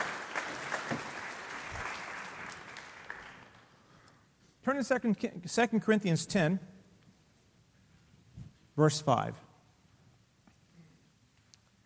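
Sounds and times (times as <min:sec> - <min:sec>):
congregation applauding in a large room: 0:00.0 - 0:03.9
speech: 0:04.7 - 0:06.7, 0:08.8 - 0:09.5.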